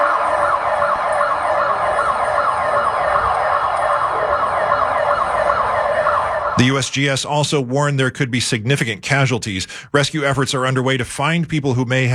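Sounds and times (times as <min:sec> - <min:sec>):
emergency sirens blaring in a residential area in Bogota Colombia after earthquake: 0:00.0 - 0:07.4
faint traffic rumble: 0:00.0 - 0:10.4
speech: 0:06.6 - 0:12.1.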